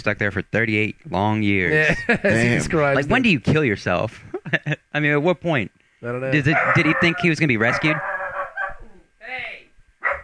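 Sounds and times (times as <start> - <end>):
speech: 0.0 - 8.1
laughter: 1.7 - 2.9, 4.2 - 4.8
dog barking with a whiny yelping tone: 6.5 - 8.8, 10.0 - 10.2.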